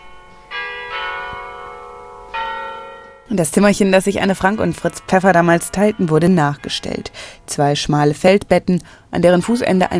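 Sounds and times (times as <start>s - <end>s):
distant church carillon bells chiming: 0.0s - 7.4s
speech: 3.3s - 9.9s.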